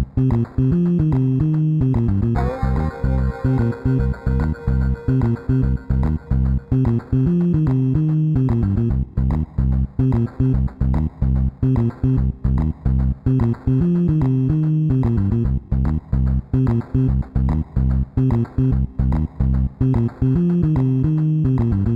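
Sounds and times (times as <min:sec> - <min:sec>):
lo-fi music: 0:00.2 - 0:09.3, 0:10.0 - 0:21.9.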